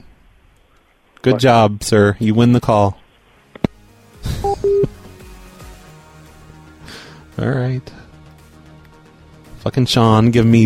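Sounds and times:
speech: 0:01.2 - 0:03.0, 0:07.4 - 0:08.0, 0:09.6 - 0:10.6
two short electronic telephone keypad tones beeping: 0:04.4 - 0:04.9.

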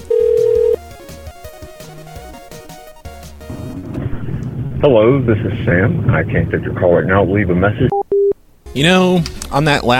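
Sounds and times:
busy melodic ringback tune of an outgoing call to a cell phone: 0:00.0 - 0:00.8
loud steady telephone tone: 0:00.0 - 0:00.8, 0:07.9 - 0:08.4
speech: 0:04.8 - 0:08.0, 0:08.8 - 0:09.9.

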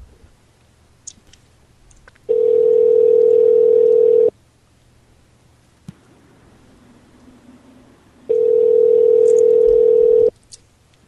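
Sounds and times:
phone ringback tone of an unanswered outgoing call: 0:02.3 - 0:04.3, 0:08.3 - 0:10.3.

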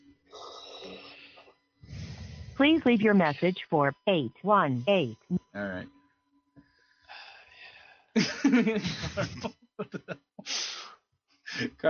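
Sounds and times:
heavy raspy breathing over a muffled phone line: 0:00.9 - 0:02.6, 0:06.6 - 0:08.2, 0:10.5 - 0:11.8
speech: 0:02.6 - 0:06.0, 0:08.2 - 0:10.8, 0:11.6 - 0:11.8
laughter: 0:08.2 - 0:10.2.

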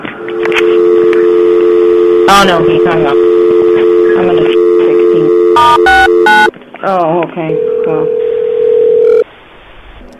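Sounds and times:
telephone ringback tone on a call to an emergency number: 0:00.3 - 0:06.5, 0:07.6 - 0:09.2
speech: 0:02.4 - 0:03.2, 0:05.8 - 0:08.2.

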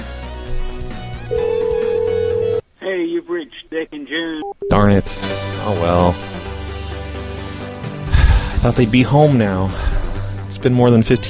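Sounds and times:
telephone ringing tone on an outgoing call heard through the line: 0:01.3 - 0:02.6
speech: 0:03.4 - 0:06.3, 0:08.6 - 0:09.9, 0:10.6 - 0:11.2.

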